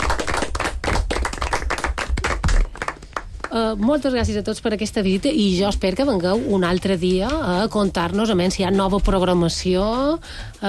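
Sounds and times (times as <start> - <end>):
group of people applauding themselves: 0.0 - 3.6
speech: 3.5 - 10.6.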